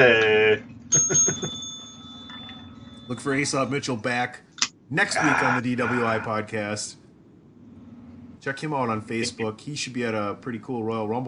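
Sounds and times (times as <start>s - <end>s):
speech: 0.0s - 1.6s, 3.1s - 7.0s, 8.4s - 11.2s
bell rung among friends drinking beer: 0.9s - 3.8s.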